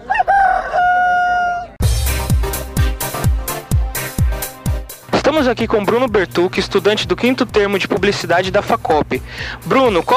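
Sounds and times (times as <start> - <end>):
rooster crowing: 0.0 - 1.8
upbeat music with punchy regular drum hits: 1.8 - 10.1
speech: 5.4 - 10.1.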